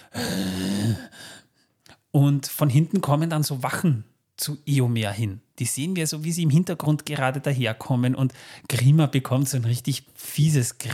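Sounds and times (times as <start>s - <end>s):
voice imitating strange heavy breathing: 0.0s - 1.4s
speech: 2.1s - 10.9s.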